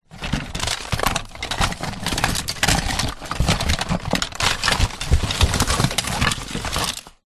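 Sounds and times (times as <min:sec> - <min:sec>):
rummaging through a box of leisure toys: 0:00.0 - 0:07.2.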